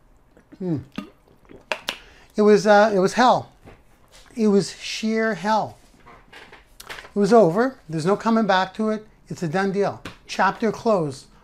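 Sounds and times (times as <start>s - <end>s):
sipping and gulping water from a glass: 0.0s - 2.4s
speech: 0.6s - 1.0s, 2.4s - 3.5s, 4.4s - 5.8s, 7.2s - 11.3s.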